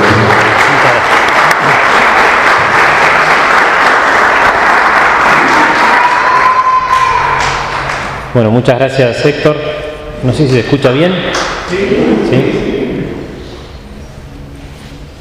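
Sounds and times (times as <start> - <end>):
conference lecture audience applauding loudly: 0.0 - 8.3
speech: 8.4 - 12.7.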